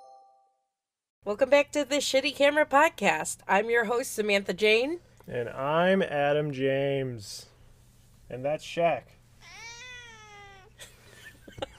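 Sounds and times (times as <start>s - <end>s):
speech: 1.2s - 7.5s, 8.3s - 9.2s
male domestic cat meowing into a microphone: 9.4s - 10.8s.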